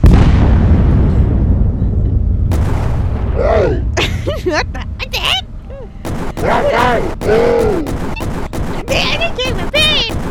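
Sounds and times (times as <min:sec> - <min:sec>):
video game cannon blasts: 0:00.0 - 0:05.0, 0:06.0 - 0:10.2
laughter: 0:03.9 - 0:05.0
rising and falling vocal-like tone: 0:05.7 - 0:07.9.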